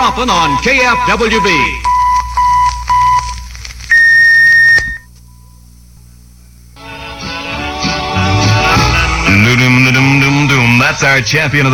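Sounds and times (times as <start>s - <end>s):
radio station electronic time signal tone: 0.0s - 5.5s
speech: 0.1s - 1.9s, 10.9s - 11.7s
music: 6.8s - 10.9s.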